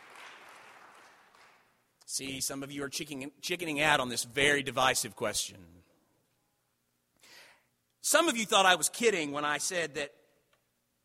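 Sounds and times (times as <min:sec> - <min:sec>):
scattered audience clapping: 0:00.0 - 0:01.8
speech: 0:02.1 - 0:05.9, 0:08.1 - 0:10.2.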